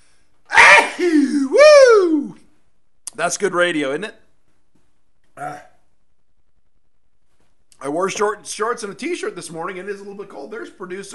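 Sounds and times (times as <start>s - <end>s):
person sneezing: 0.5s - 1.6s
speech: 3.2s - 4.2s, 7.9s - 11.1s.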